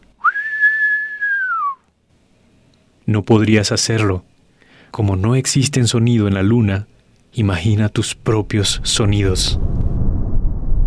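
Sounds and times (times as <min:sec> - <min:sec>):
whistled note: 0:00.2 - 0:01.9
speech: 0:03.1 - 0:04.3, 0:04.9 - 0:09.8.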